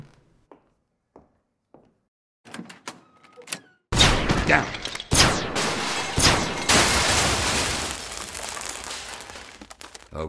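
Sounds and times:
blaster fire from a booby-trap blaster rig: 4.0s - 8.2s
speech: 4.5s - 4.8s.

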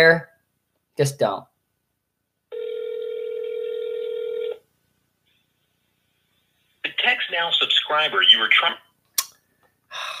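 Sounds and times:
speech: 0.0s - 0.3s, 1.0s - 1.5s, 7.3s - 8.9s
steady telephone dial tone: 2.5s - 4.6s.

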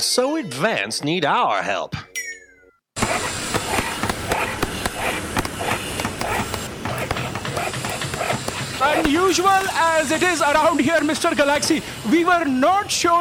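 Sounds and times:
speech: 0.2s - 2.1s, 8.8s - 13.1s
dog vocalizing: 3.0s - 9.1s
loud dense noise with sharp bursts: 3.0s - 13.1s.

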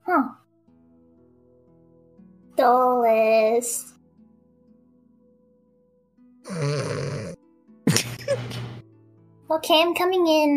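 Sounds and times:
speech: 2.6s - 4.0s, 9.5s - 10.5s
person snoring asleep in a bed behind a door: 6.5s - 8.6s.

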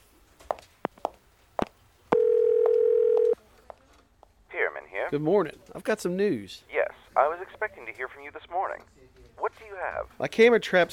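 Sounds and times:
telephone dial tone when placing a call: 2.2s - 3.4s
speech: 5.1s - 10.9s.

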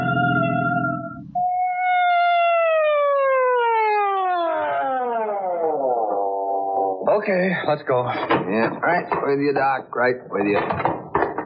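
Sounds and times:
emergency vehicle siren wailing: 0.0s - 7.0s
speech: 7.2s - 11.0s.

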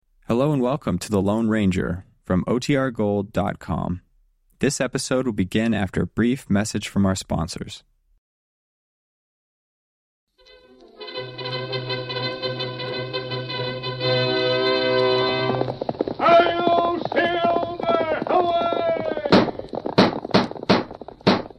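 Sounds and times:
speech: 0.3s - 4.0s, 4.6s - 7.9s
brassy orchestral music: 10.4s - 19.2s
galloping horse hooves: 10.9s - 21.5s.

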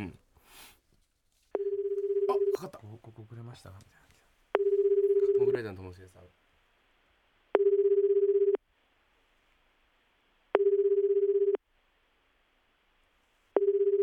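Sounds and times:
outgoing phone call ringback tones from a studio: 1.6s - 2.7s, 4.6s - 5.6s, 7.6s - 8.6s, 10.6s - 11.6s, 13.6s - 14.0s
speech: 2.6s - 4.0s, 5.4s - 6.3s.

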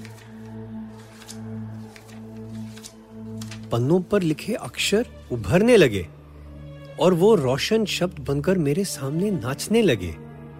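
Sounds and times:
book pages turning: 0.0s - 4.8s
speech: 3.7s - 6.2s, 7.0s - 10.2s.

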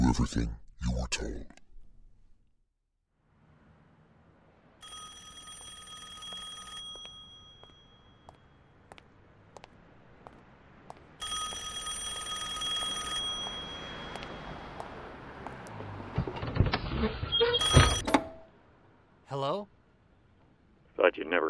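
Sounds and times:
speech: 0.1s - 1.6s
low hum of street ambience on a lonely street: 3.2s - 21.4s
telephone bell ringing in an empty phone booth: 4.8s - 8.6s, 11.2s - 14.9s, 17.6s - 18.1s.

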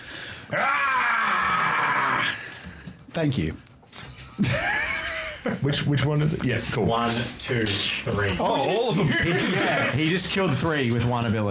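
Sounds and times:
speech: 0.5s - 0.7s, 3.2s - 3.7s, 4.4s - 4.7s, 5.6s - 11.4s
man's strained raspy battle scream imitating an armored warrior's war cry: 0.5s - 2.4s
laughter: 4.4s - 6.0s, 8.4s - 10.8s.

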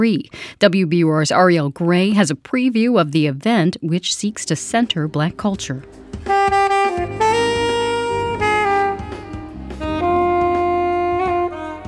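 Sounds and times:
speech: 0.0s - 6.6s
solo saxophone playing a melodic phrase: 5.9s - 11.8s.

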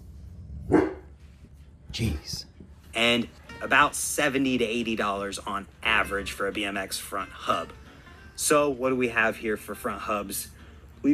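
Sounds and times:
dog barking: 0.7s - 1.2s
speech: 2.0s - 7.8s, 8.4s - 11.1s.

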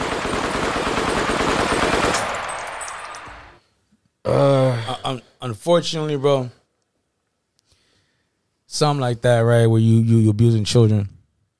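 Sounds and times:
rapid sustained burst of gunfire sound effect: 0.0s - 3.5s
speech: 5.5s - 6.6s, 8.7s - 11.2s.

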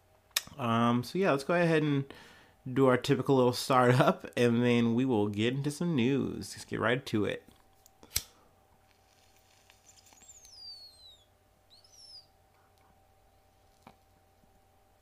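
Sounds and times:
low steady hum: 0.0s - 15.0s
speech: 0.6s - 7.5s
bird chirping: 9.5s - 12.4s.

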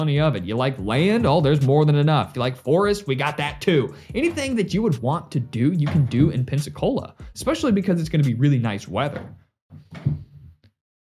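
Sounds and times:
speech: 0.0s - 10.0s
door rattling and thumping from a cat trying to open it: 9.1s - 10.4s.

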